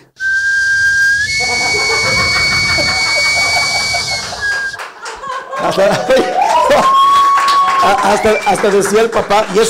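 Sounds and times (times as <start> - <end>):
breathy hissing: 0.0 - 4.8
person imitating a sweet potato vendor's steam whistle: 0.1 - 4.8
laughter: 1.3 - 7.1
speech: 5.7 - 7.0, 7.8 - 9.6.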